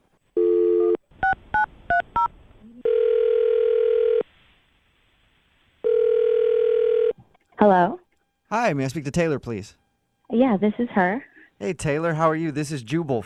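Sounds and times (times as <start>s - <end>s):
steady telephone dial tone: 0.4s - 1.4s, 2.2s - 4.2s, 5.8s - 7.2s
speech: 7.6s - 13.2s.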